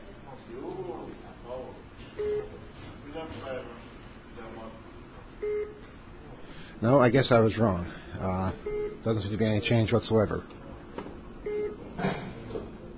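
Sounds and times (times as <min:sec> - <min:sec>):
short electronic elevator beeps: 0:02.2 - 0:02.5, 0:05.4 - 0:05.8, 0:08.6 - 0:09.0, 0:11.5 - 0:11.8
speech: 0:06.8 - 0:10.6.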